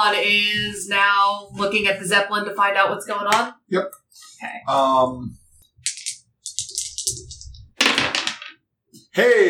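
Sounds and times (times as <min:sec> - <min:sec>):
speech: 0:00.1 - 0:05.4, 0:09.2 - 0:09.4
dice clattering across a hard tabletop: 0:05.8 - 0:08.6.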